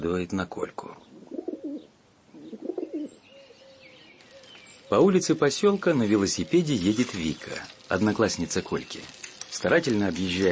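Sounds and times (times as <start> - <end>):
speech: 0.0 - 0.9, 4.9 - 10.5
carrier pigeon cooing: 1.1 - 5.0.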